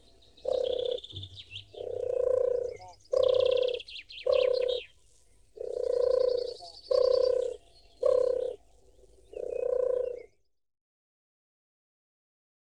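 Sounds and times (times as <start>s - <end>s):
wood pigeon giving soft throaty coos: 0.0s - 4.9s, 5.6s - 8.6s, 9.3s - 10.3s
faint high chirps from other birds: 0.0s - 10.4s.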